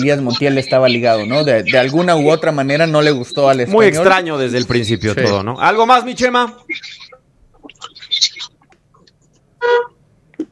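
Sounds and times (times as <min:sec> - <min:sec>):
speech: 0:00.0 - 0:07.0, 0:09.6 - 0:09.9
short loud brassy car horn honk: 0:09.6 - 0:10.0.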